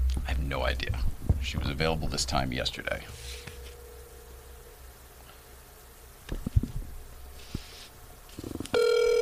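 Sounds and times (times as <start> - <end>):
quiet steady hum: 0.0 - 9.2
speech: 0.5 - 3.5
phone ringback tone of an outgoing call: 8.8 - 9.2.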